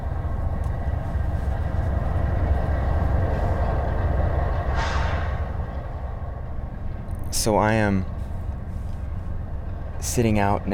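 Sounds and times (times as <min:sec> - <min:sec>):
slow-moving freight train of coal cars rumbling past: 0:00.0 - 0:10.7
metallic squeal of freight train: 0:04.7 - 0:05.6
speech: 0:07.4 - 0:08.2, 0:10.0 - 0:10.7.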